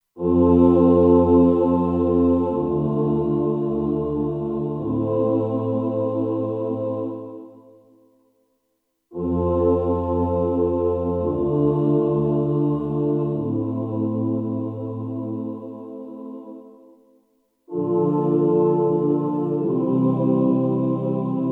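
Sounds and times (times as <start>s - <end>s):
cathedral choir patch on a Kurzweil K2500X synthesizer: 0.1s - 8.5s, 9.1s - 21.4s.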